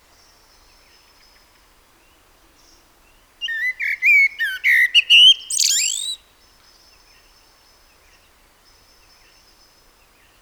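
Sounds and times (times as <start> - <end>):
Common blackbird Turdus merula singing: 3.4 - 6.2.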